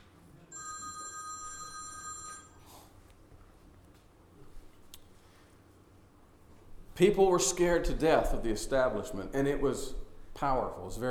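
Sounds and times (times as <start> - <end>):
low hum: 0.0 - 11.0
telephone ringing with electronic trill: 0.5 - 2.6
speech: 7.0 - 11.0.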